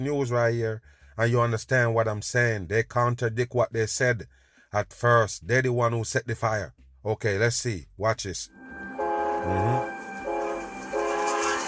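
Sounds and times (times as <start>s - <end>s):
speech: 0.0s - 8.6s, 9.4s - 9.9s
freight train horn blasts: 8.6s - 11.6s.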